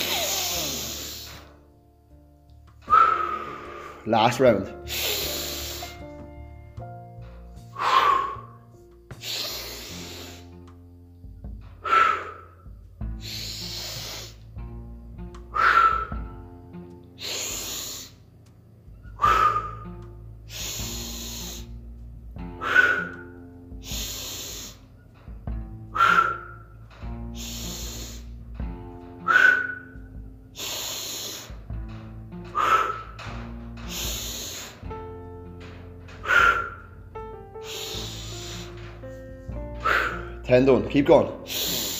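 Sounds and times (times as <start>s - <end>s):
slow hissing exhales during a guided breathing exercise: 0.0s - 1.6s, 2.9s - 4.0s, 4.8s - 6.4s, 7.7s - 10.8s, 11.8s - 14.6s, 15.5s - 16.2s, 17.1s - 18.3s, 19.1s - 19.9s, 20.5s - 21.9s, 22.6s - 25.0s, 25.9s - 28.5s, 29.2s - 30.0s, 30.6s - 34.9s, 35.6s - 37.0s, 37.6s - 40.4s, 41.4s - 41.9s
speech: 4.0s - 5.0s, 40.6s - 41.4s.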